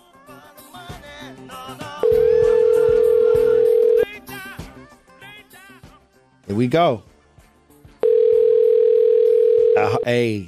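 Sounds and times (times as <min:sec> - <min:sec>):
music: 0:00.0 - 0:10.4
phone ringback tone during an outgoing call: 0:02.0 - 0:04.1, 0:08.0 - 0:10.1
speech: 0:06.5 - 0:07.1, 0:10.0 - 0:10.4.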